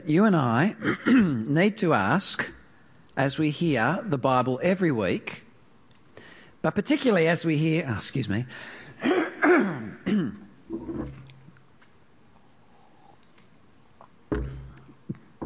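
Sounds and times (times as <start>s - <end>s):
speech: 0.1s - 2.6s, 3.2s - 5.4s, 6.6s - 10.2s
throat clearing and coughing from a person with a blocked throat: 0.8s - 1.5s, 9.0s - 10.5s.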